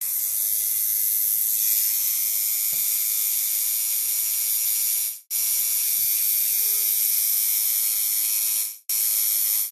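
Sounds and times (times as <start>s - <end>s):
tattoo gun: 0.0s - 9.7s.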